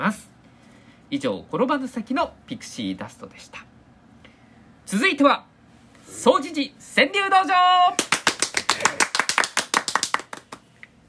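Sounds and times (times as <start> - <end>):
speech: 0.1 - 0.3, 1.1 - 3.7, 4.9 - 5.5, 6.1 - 8.1, 8.8 - 9.1
small group hand clapping in a small room: 8.0 - 10.7.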